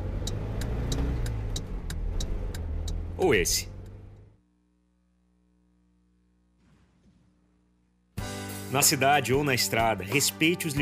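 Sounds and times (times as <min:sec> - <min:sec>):
car engine droning while overtaking on the road: 0:00.0 - 0:04.4
sharp high ticks: 0:00.2 - 0:03.1
speech: 0:03.2 - 0:03.7, 0:08.7 - 0:10.8.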